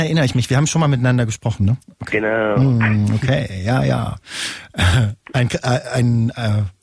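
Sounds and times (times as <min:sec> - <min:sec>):
speech: 0:00.0 - 0:06.8
loud voiced wheezing gasps: 0:04.2 - 0:04.8.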